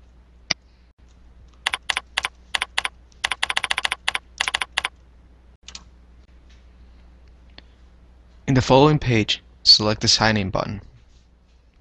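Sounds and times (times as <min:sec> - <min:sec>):
web address typed on a computer keyboard: 0:01.6 - 0:05.0
speech: 0:08.5 - 0:10.9.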